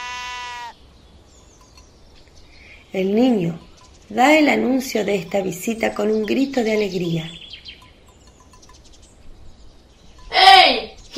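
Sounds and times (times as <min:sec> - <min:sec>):
single sheep bleating as a shepherd leads a flock to pasture: 0:00.0 - 0:00.8
speech: 0:02.9 - 0:07.4.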